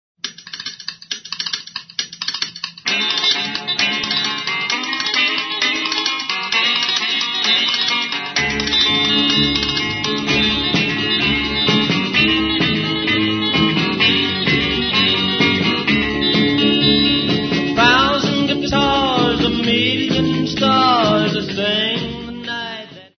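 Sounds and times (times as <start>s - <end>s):
a thousand guitars: 2.8s - 23.1s.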